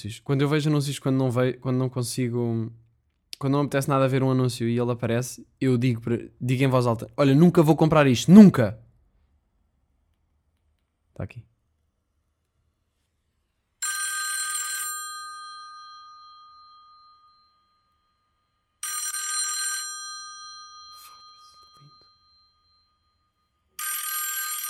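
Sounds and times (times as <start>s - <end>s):
speech: 0.0s - 2.8s, 3.4s - 8.8s, 11.2s - 11.5s
loud clanging old telephone bell ringing: 13.8s - 24.6s.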